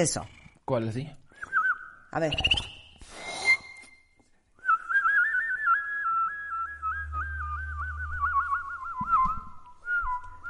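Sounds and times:
speech: 0.0s - 1.2s, 2.1s - 2.7s
person whistling a warbling birdlike melody imitating a meadowlark: 1.4s - 3.8s, 4.6s - 10.4s.

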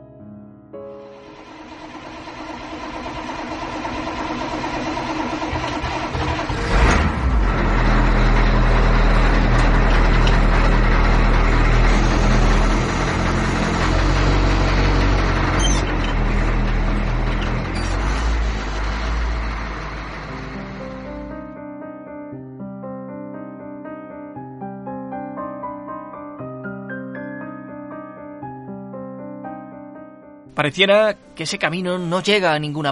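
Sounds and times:
car engine sputtering and revving on a winding bumpy road: 1.4s - 21.4s
speech: 30.6s - 32.9s.

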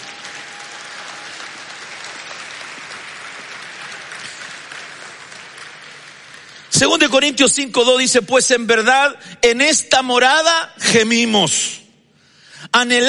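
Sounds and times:
audience applauding during a sermon: 0.0s - 8.0s
speech: 6.8s - 11.8s, 12.7s - 13.0s.

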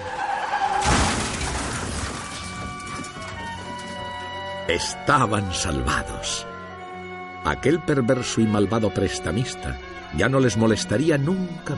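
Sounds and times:
car tires skidding: 0.0s - 4.1s
crunching metal and shattering debris: 0.0s - 4.9s
car crashing into a huge train: 0.5s - 3.9s
speech: 4.7s - 6.5s, 7.4s - 11.7s.

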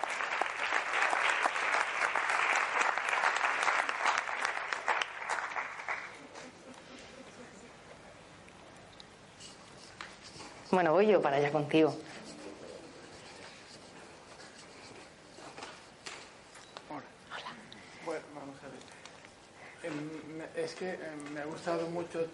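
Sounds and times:
audience at a talk applauding: 0.0s - 6.4s
room noise: 0.0s - 22.3s
speech: 10.7s - 12.1s, 20.8s - 22.3s.

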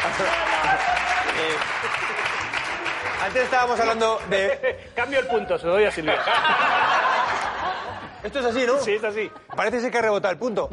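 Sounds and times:
laughter: 0.0s - 3.5s, 4.2s - 10.3s
small group clapping: 0.0s - 4.6s, 7.0s - 8.0s
speech: 0.2s - 2.3s, 3.2s - 7.0s, 8.2s - 10.7s.

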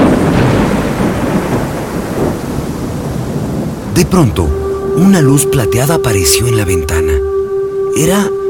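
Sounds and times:
deep rumbling thunder: 0.0s - 5.2s
heavy rain falling: 0.0s - 7.2s
speech: 4.0s - 7.4s, 8.0s - 8.4s.

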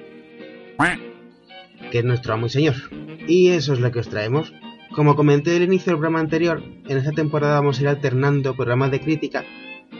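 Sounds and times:
duck quacking: 0.8s - 1.0s
speech: 0.8s - 1.1s, 1.8s - 9.9s.

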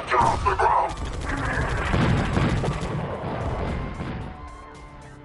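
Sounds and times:
distant gunfire: 0.2s - 4.2s.

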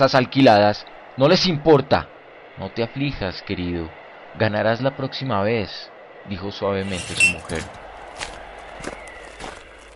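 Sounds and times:
speech: 0.0s - 9.0s
approaching footsteps: 6.8s - 9.9s.

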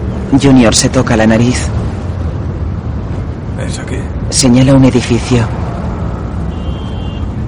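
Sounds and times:
car engine and road noise: 0.0s - 7.4s
speech: 0.3s - 1.9s, 3.6s - 5.7s.

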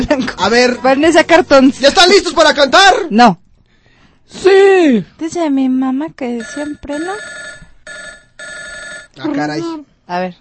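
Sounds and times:
speech: 0.2s - 3.4s, 4.3s - 7.4s, 9.2s - 10.4s
telephone ringing with electronic trilling tone: 6.4s - 9.2s.

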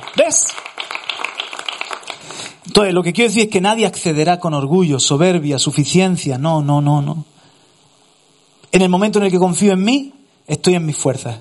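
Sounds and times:
crowd applauding: 0.0s - 2.6s
speech: 0.2s - 0.8s, 2.8s - 7.4s, 8.7s - 11.3s.

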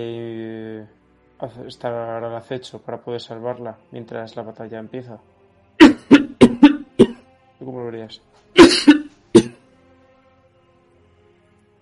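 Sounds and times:
speech: 0.0s - 0.4s, 1.4s - 5.3s, 7.7s - 9.0s
sharp raspy coughs: 5.8s - 7.2s, 8.6s - 9.6s.

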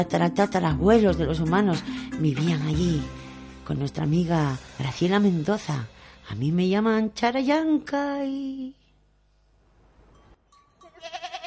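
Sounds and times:
speech: 0.0s - 8.8s
quiet noise: 6.2s - 11.0s
goat or sheep bleating: 10.8s - 11.4s.

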